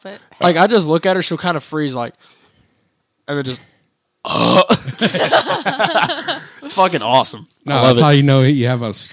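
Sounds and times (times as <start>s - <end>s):
speech: 0.0s - 2.4s, 3.3s - 9.1s
loud croaky burp: 4.2s - 4.9s
laughter: 4.7s - 7.0s.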